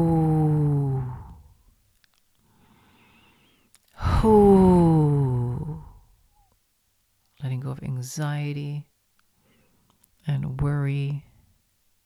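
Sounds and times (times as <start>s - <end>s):
faint inhale: 0.0s - 1.6s, 2.4s - 6.0s, 9.4s - 10.0s
voiced hoo exhalations of the qigong spleen healing sound: 0.0s - 1.6s, 2.7s - 6.1s
speech: 8.0s - 8.9s, 10.3s - 11.3s.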